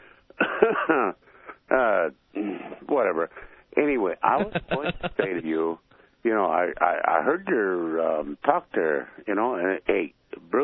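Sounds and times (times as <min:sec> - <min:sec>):
smoker clearing his throat over a phone line: 0:00.4 - 0:01.2
smoker coughing and clearing his throat over a phone line: 0:00.4 - 0:01.2
speech: 0:00.6 - 0:10.6
laughter: 0:04.4 - 0:05.4.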